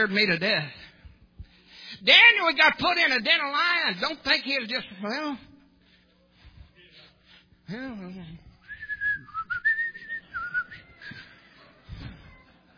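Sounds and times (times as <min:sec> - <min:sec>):
speech: 0:00.0 - 0:00.8, 0:02.0 - 0:05.5, 0:07.7 - 0:08.3
person whistling a short wavering tune: 0:08.7 - 0:11.3.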